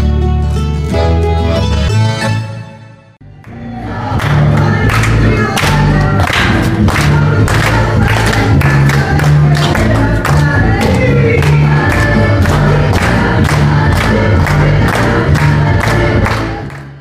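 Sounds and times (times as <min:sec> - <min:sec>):
loud rhythmic belly dance music: 0:00.4 - 0:16.9
concert audience hands clapping along: 0:03.4 - 0:16.9.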